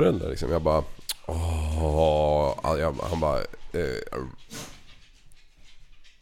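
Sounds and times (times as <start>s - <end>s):
speech: 0.0s - 4.7s
dog panting and snuffling: 4.4s - 6.2s.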